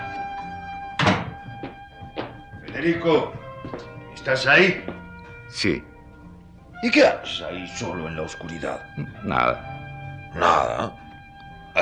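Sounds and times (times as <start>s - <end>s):
quiet music with sustained tones: 0.0s - 11.8s
door opening with a wooden thunk: 1.0s - 1.6s
speech: 2.8s - 4.9s, 5.5s - 5.9s, 6.8s - 9.7s, 10.3s - 11.0s.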